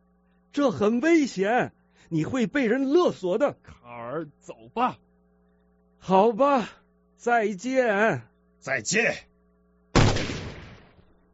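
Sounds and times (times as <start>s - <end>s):
speech: 0.5s - 5.0s, 6.0s - 9.3s
gunshot fired by one man at another: 10.0s - 11.1s.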